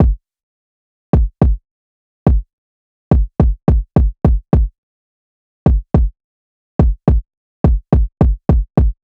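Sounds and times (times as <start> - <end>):
kick drum loop: 0.0 - 0.2, 1.2 - 1.6, 2.3 - 2.5, 3.1 - 4.7, 5.7 - 6.1, 6.8 - 9.0.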